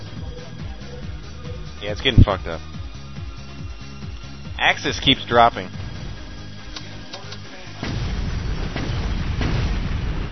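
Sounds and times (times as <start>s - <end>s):
constant low rumble of video game combat noise: 1.0s - 7.1s, 7.7s - 10.3s
speech: 1.8s - 2.8s, 4.6s - 5.8s
grenades exploding in a video game battle: 7.8s - 10.3s.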